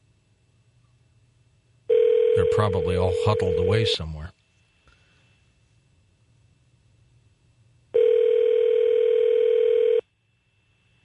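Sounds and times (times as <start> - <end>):
telephone ringback tone on an outgoing call: 1.9 - 4.0, 8.0 - 10.0
speech: 2.5 - 4.4.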